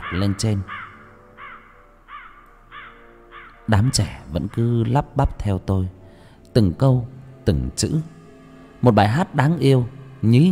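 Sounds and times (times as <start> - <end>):
crow cawing from a rooftop: 0.0 - 4.2
speech: 0.1 - 0.8, 3.7 - 6.0, 6.6 - 8.2, 8.8 - 10.5.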